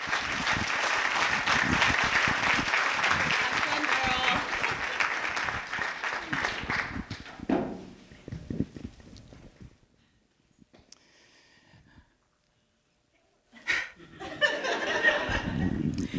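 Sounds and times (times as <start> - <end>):
people cheering: 0.0 - 7.0
large audience applauding a speaker: 0.0 - 7.3
laughter: 13.7 - 16.1.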